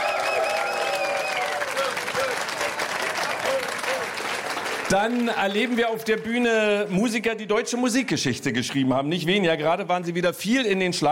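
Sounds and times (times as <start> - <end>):
audience whistling: 0.0 - 1.7
audience cheering: 0.0 - 6.4
live audience applauding: 0.0 - 7.0
speech: 4.9 - 11.1.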